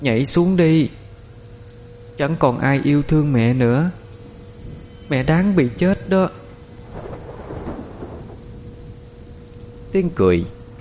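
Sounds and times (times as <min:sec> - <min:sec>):
speech: 0:00.0 - 0:01.0, 0:02.2 - 0:04.0, 0:05.1 - 0:06.4, 0:10.0 - 0:10.6
storm wind: 0:00.0 - 0:10.7
low thunder rumble: 0:01.1 - 0:10.7
steady dense rain in a storm: 0:06.8 - 0:10.7.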